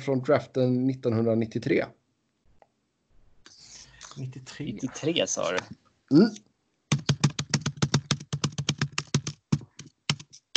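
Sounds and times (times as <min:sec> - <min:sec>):
speech: 0:00.0 - 0:02.0, 0:04.2 - 0:06.5
computer keyboard typing: 0:06.9 - 0:10.5.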